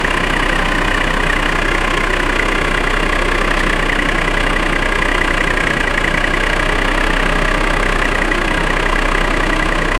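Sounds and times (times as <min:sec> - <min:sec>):
marine diesel engine running: 0:00.0 - 0:09.9.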